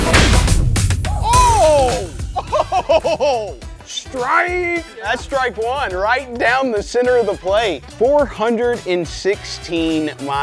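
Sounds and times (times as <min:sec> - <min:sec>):
cannon launching a ball: 0:00.0 - 0:03.1
people shouting excitedly: 0:01.1 - 0:03.6
people laughing: 0:01.8 - 0:03.7
speech: 0:03.0 - 0:10.4.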